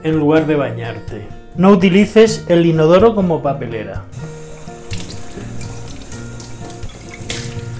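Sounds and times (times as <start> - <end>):
speech: 0.0 - 4.3
water streaming from a tap into a sink: 4.2 - 7.7.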